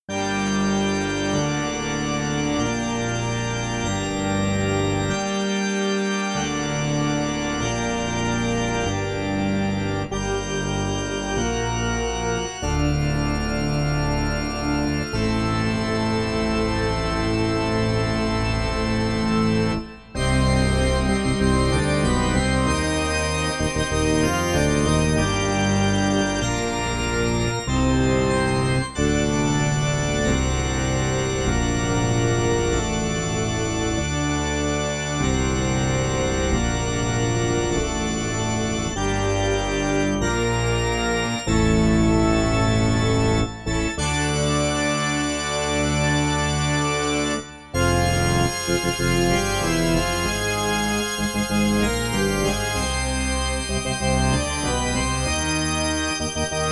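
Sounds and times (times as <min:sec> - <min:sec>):
church organ: 0:00.0 - 0:56.7.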